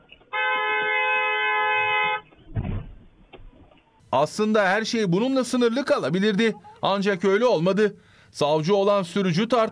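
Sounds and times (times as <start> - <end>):
street noise and traffic rumble: 0.0 - 9.7
car horn blast: 0.3 - 2.3
speech: 4.1 - 9.7.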